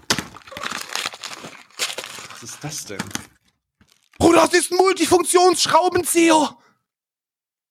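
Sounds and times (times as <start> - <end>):
cardboard advent calendar door being torn open: 0.0 - 4.2
speech: 2.4 - 3.3, 4.4 - 6.6.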